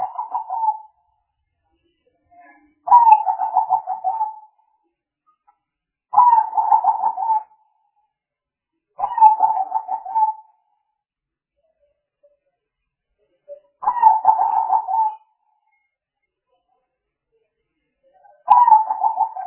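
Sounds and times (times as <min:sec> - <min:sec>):
spotted dove cooing: 0:00.0 - 0:00.9, 0:02.9 - 0:04.5, 0:06.2 - 0:07.5, 0:09.0 - 0:10.5, 0:13.8 - 0:15.2, 0:18.5 - 0:19.4.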